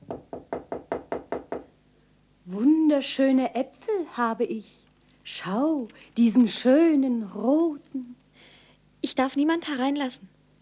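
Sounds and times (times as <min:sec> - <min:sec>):
knocking on a door: 0:00.0 - 0:01.7
speech: 0:02.5 - 0:08.1, 0:09.1 - 0:10.3.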